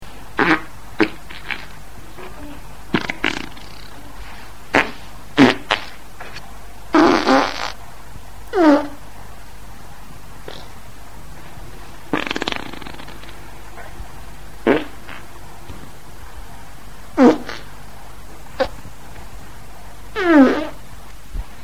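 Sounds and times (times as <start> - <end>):
farting: 0.4 - 7.8, 8.5 - 9.0, 10.4 - 10.7, 12.0 - 13.9, 14.6 - 15.3, 17.2 - 17.7, 18.6 - 18.8, 20.2 - 20.8.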